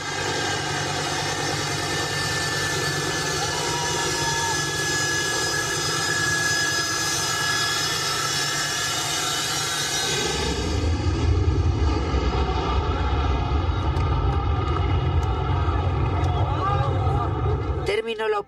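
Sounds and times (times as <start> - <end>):
airplane engines of evacuation flights from Afghanistan droning with high whine: 0.0 - 18.4
voices: 12.3 - 18.4.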